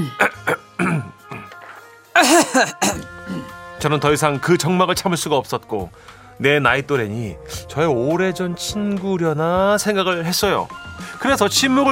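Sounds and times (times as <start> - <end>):
speech: 0.0 - 0.2, 2.6 - 3.1, 3.8 - 11.8
person clearing throat: 0.0 - 1.6, 2.2 - 3.6
short rough coughs: 0.2 - 1.5, 2.2 - 3.5.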